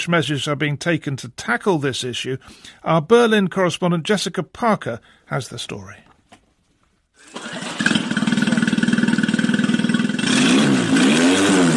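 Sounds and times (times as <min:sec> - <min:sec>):
speech: 0:00.0 - 0:06.0
boat motor engine cranking, catching and chugging: 0:07.2 - 0:11.7.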